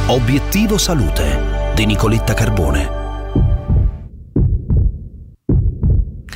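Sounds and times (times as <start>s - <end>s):
speech: 0.1s - 3.0s
loud heartbeat thumping in lub-dub rhythm: 3.3s - 6.3s.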